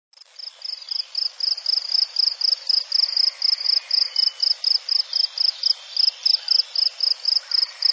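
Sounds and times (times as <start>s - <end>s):
cricket giving shrill pulsed chirps: 0.2s - 7.9s.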